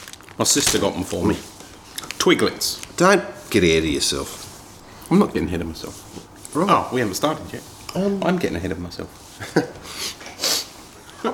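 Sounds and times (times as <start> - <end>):
speech: 0.4 - 1.6, 2.2 - 4.5, 5.1 - 10.2
person sniffing sharply through the nose: 9.8 - 10.9.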